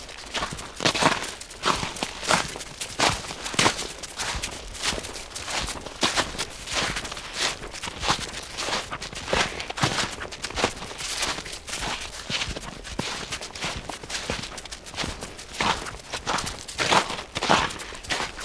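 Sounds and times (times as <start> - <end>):
footsteps in snow: 0.0 - 18.4.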